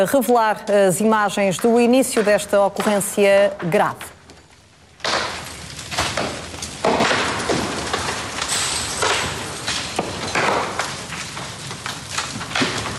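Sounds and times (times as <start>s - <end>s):
speech: 0.0s - 4.2s
glass breaking: 4.1s - 12.9s
explosive bangs and cracks at the start of a fire: 4.8s - 12.9s.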